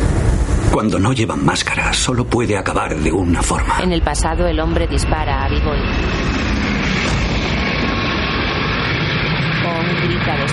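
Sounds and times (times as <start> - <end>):
airplane engine roar passing over a truck: 0.0 - 10.5
speech: 0.8 - 6.6, 10.0 - 10.5.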